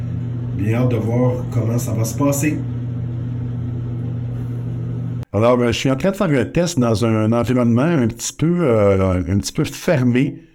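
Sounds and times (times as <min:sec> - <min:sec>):
electric fan running: 0:00.0 - 0:05.3
speech: 0:00.6 - 0:02.8, 0:05.3 - 0:10.5.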